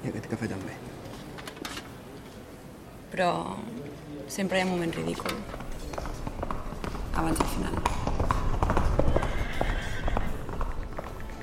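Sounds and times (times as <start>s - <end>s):
speech: 0.3s - 0.9s, 3.1s - 3.7s, 4.3s - 5.6s, 7.2s - 8.0s
horse hooves galloping: 4.7s - 11.4s.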